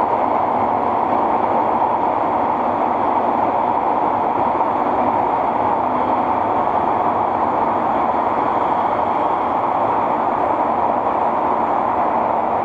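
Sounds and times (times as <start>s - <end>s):
linear motor aluminium subway train roar heard from inside a car: 0.0s - 12.6s.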